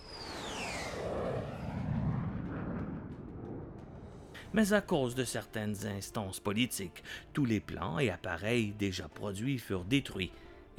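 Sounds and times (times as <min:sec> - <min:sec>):
Avro CF-105 Arrow jet fighter roaring past: 0:00.0 - 0:04.4
speech: 0:04.5 - 0:10.7.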